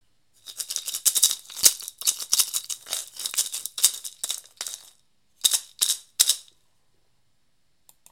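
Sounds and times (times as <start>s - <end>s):
hand-crafted guinea hen shaker rattling: 0.4s - 6.6s.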